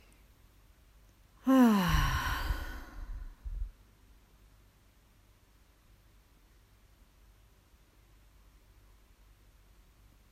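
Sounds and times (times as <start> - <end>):
deep breath sigh during a relaxation exercise: 1.4 - 3.7.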